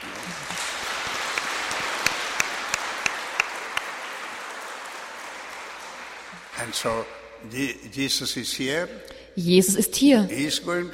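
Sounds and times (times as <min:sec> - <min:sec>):
congregation applauding: 0:00.0 - 0:07.0
sharp louder claps: 0:00.0 - 0:07.2
speech: 0:06.6 - 0:10.9.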